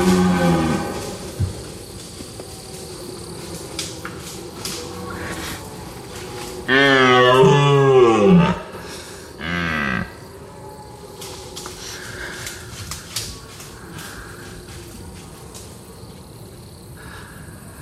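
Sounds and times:
large stag roaring during a face-off fight: 0.0 - 1.4, 6.4 - 8.8.

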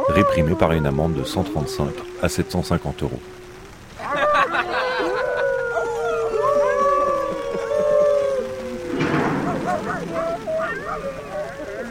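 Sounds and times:
chorus of drawn-out howls breaking into yips and yelps: 0.0 - 11.8
speech: 0.1 - 3.4
laughter: 4.0 - 11.8.

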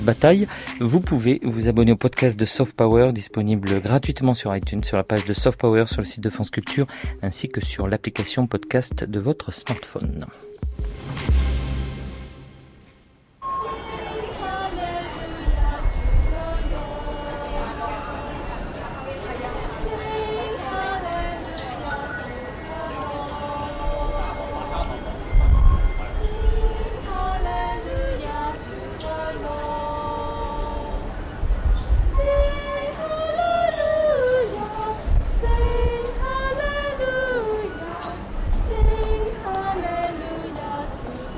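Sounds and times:
speech: 0.0 - 10.5
crowd chatter in a metro station in Hong Kong: 13.4 - 41.3.

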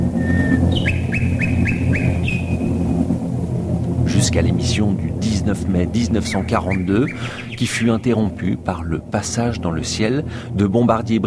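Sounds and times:
steady low rumbling background: 0.0 - 11.2
nightingale singing in a garden in Surrey England: 0.1 - 2.9, 6.0 - 8.2
speech: 4.4 - 11.2.

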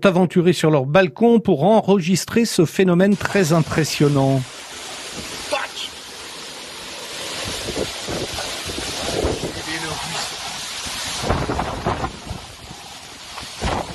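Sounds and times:
speech: 0.0 - 4.6
dense roaring thunderstorm rain: 2.8 - 13.9
buffeting wind gusts: 3.1 - 13.9
heavy thunder rumbles: 7.0 - 13.9.

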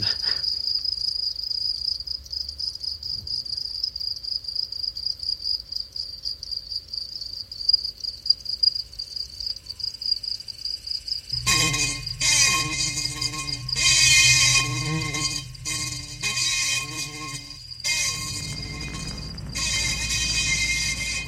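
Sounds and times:
cricket chirping in a high-pitched trill: 0.1 - 21.2
faint low rumble: 11.4 - 21.2.

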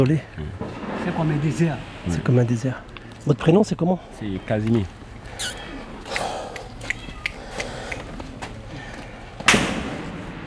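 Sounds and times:
speech: 0.0 - 5.6
gunshots from police firing in an isolated area: 9.5 - 10.4.

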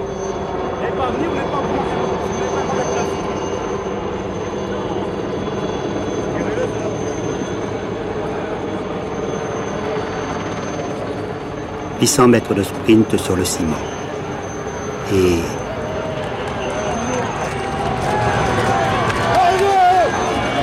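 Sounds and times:
two helicopters circling over a velodrome: 0.0 - 20.6
speech: 1.0 - 2.1, 12.0 - 14.0, 15.1 - 15.6
faint indistinct voices: 12.0 - 13.9, 15.0 - 15.7.

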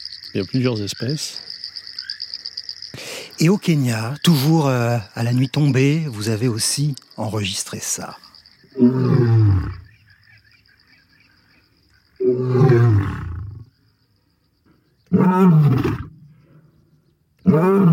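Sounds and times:
speech: 0.3 - 1.5, 3.4 - 8.2, 8.8 - 9.8
old lion roaring at nightfall: 8.7 - 9.8, 12.2 - 13.7, 15.1 - 16.3, 17.4 - 17.9.

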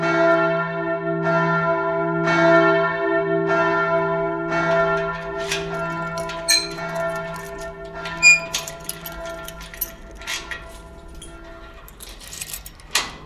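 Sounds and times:
large church bell swinging and ringing: 0.0 - 13.2
metallic clanks and ticks: 4.5 - 13.2.

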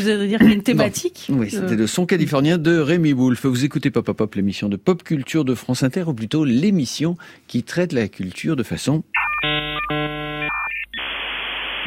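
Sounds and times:
speech: 0.0 - 9.6
56K dial-up modem connecting: 9.2 - 11.8
hissing static: 9.8 - 11.8.

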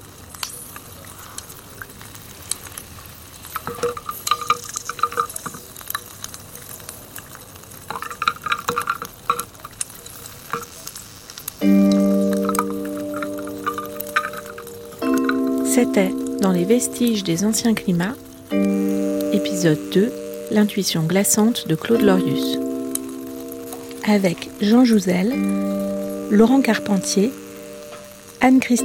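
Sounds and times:
100,000-year-old air bubbles escaping from ancient ice core in Grenoble laboratory: 0.2 - 28.8
sustained musical tone: 11.6 - 28.8
speech: 15.8 - 18.8, 19.4 - 22.7, 24.0 - 27.4, 28.4 - 28.8.

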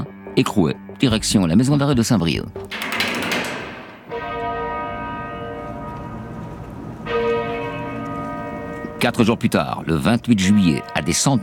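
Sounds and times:
speech: 0.4 - 2.8, 9.0 - 11.4
church bells ringing at a funeral in Mantes-la-Jolie: 2.7 - 11.4.

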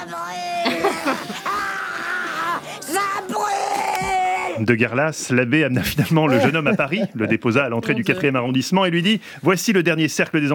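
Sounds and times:
laughter: 0.5 - 3.4, 5.8 - 8.1
speech: 1.0 - 1.5, 4.6 - 10.5
child screaming while levitating to the ceiling: 1.2 - 4.6.

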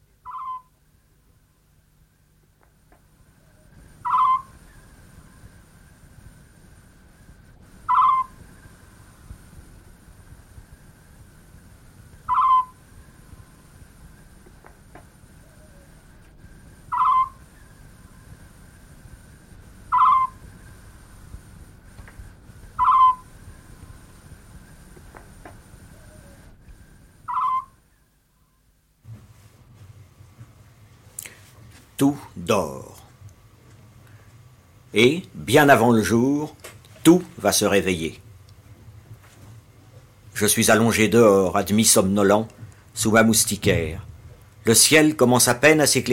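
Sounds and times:
soft constant hiss of night air: 0.0 - 46.1
owl hooting at night: 0.2 - 0.8, 3.2 - 10.1, 10.7 - 21.5, 22.3 - 28.6
speech: 32.0 - 32.8, 35.0 - 38.2, 40.4 - 46.1.

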